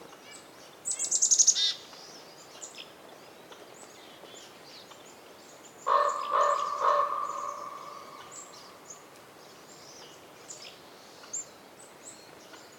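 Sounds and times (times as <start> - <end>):
wind in a winter forest in Canada: 0.0 - 12.7
birds chirping in a winter forest in Canada: 0.8 - 12.7
raven croaking in a winter forest in the North Laurentian Woods, Canada: 5.9 - 9.1.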